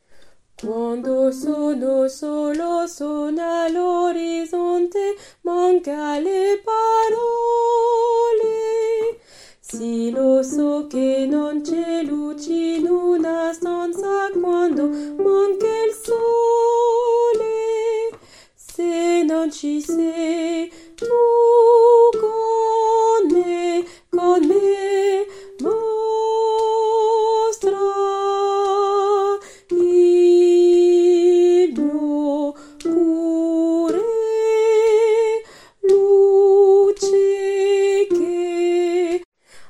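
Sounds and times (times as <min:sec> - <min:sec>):
tenor singing: 0:00.6 - 0:39.3.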